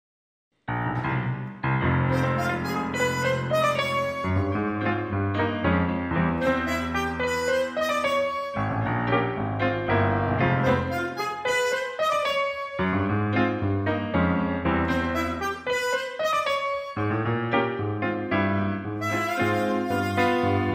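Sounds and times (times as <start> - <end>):
FM piano playing: 0.7 - 20.7
harmonica: 2.1 - 4.6, 6.4 - 8.8, 10.6 - 12.8, 14.9 - 17.0, 19.0 - 20.7.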